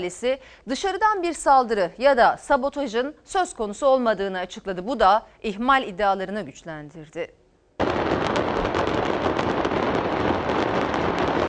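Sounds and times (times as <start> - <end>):
speech: 0.0 - 7.4
fireworks barrage exploding at a fireworks factory in Hendek, Sakarya: 7.8 - 11.4
rapid crackling bursts and pops of fireworks: 7.8 - 11.4.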